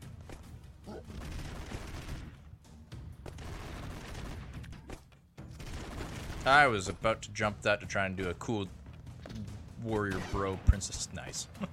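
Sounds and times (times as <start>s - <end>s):
homing bullets firing from red laser weapon in action video game: 1.0s - 2.4s, 3.3s - 4.6s, 5.6s - 6.6s
speech: 6.4s - 8.8s, 9.8s - 11.7s.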